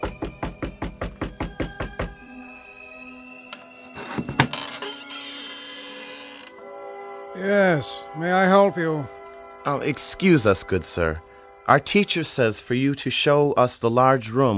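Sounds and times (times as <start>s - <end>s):
firm knocking on a wooden house door: 0.0s - 2.2s
speech: 7.4s - 14.5s.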